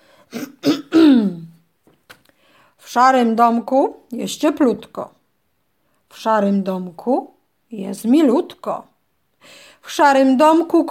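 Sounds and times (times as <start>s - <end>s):
throat clearing by a voice playing a wolf character: 0.3s - 1.5s
speech: 2.9s - 5.2s, 6.1s - 10.8s.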